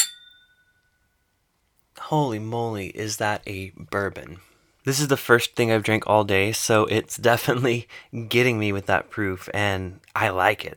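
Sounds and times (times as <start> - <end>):
glasses clinking in a toast: 0.0 - 0.8
speech: 2.1 - 10.7.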